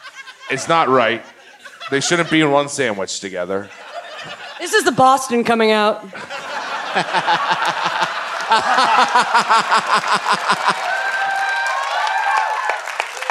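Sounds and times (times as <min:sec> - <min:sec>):
crowd laughing: 0:00.0 - 0:02.7, 0:03.6 - 0:05.0, 0:06.1 - 0:13.3
speech: 0:00.5 - 0:11.0
audience clapping in a steady rhythmic beat: 0:06.9 - 0:13.3.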